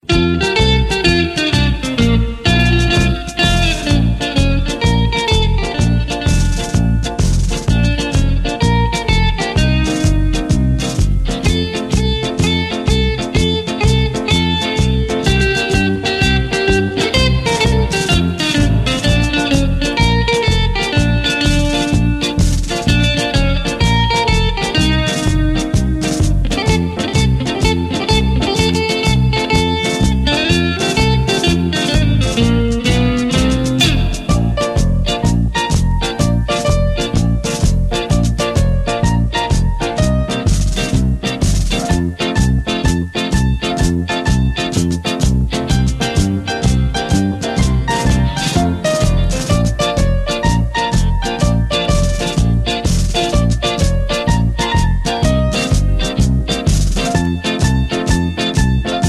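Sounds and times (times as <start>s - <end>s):
music: 0.0s - 59.0s.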